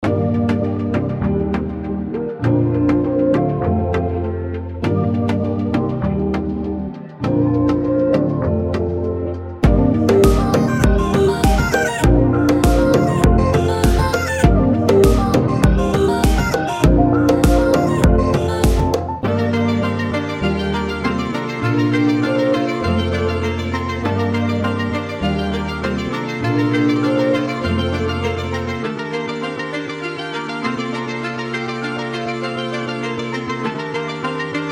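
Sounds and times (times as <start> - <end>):
music loop in A major: 0.0 - 34.7.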